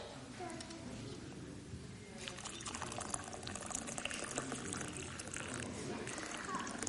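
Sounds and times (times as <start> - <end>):
faint voices: 0.2 - 6.8
water pouring into a teapot to make tea: 2.2 - 6.8.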